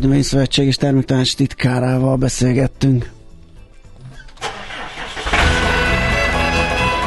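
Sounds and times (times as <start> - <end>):
speech: 0.0 - 3.2
small engine of a motorized cultivator starting and running: 4.4 - 7.0.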